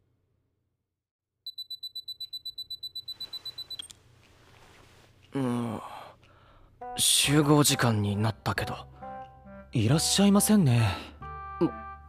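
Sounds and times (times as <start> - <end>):
timer beeping with high electronic pips: 1.5 - 3.9
speech: 5.4 - 5.9, 7.0 - 9.0, 9.7 - 12.0.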